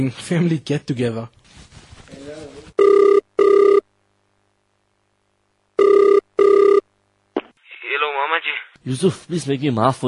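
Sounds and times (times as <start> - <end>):
speech: 0.0 - 1.8, 8.8 - 10.0
phone outgoing ringback tone in double-pulse bursts: 2.8 - 3.8, 5.8 - 6.8.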